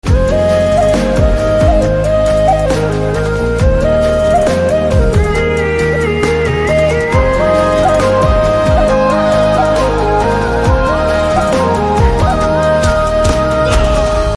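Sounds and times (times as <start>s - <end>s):
flute background music ringtone: 0.0s - 14.3s.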